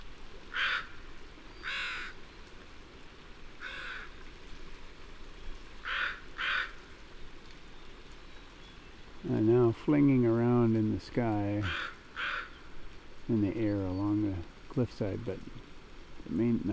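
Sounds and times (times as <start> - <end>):
crows cawing on a bare bedrock cliff in open shrub habitat: 0.5 - 2.2, 3.6 - 4.2, 5.8 - 7.0, 11.6 - 13.0
speech: 9.3 - 11.9, 13.3 - 15.7, 16.3 - 16.7.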